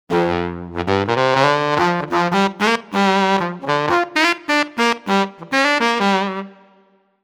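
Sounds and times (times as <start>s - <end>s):
baritone saxophone: 0.1s - 6.9s.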